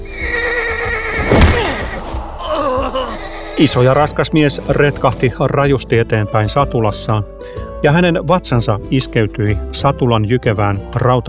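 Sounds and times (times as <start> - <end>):
startled horse whinnying loudly: 0.0 - 4.0
speech: 3.6 - 11.2.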